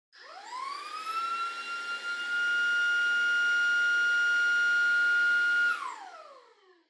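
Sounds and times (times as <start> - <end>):
distant vacuum cleaner on high setting: 0.2 - 6.8.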